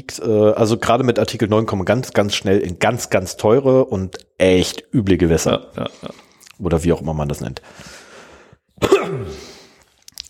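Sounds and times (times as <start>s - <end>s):
speech: 0.1s - 8.0s, 8.8s - 9.5s
soft breathy noise: 7.6s - 10.0s
person coughing with raspy exhale: 8.8s - 9.7s.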